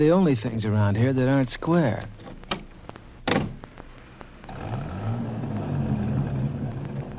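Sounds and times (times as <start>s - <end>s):
speech: 0.0s - 2.2s
sharp thumps: 2.0s - 7.1s
T-bird car engine pulling up and idling: 2.2s - 7.1s.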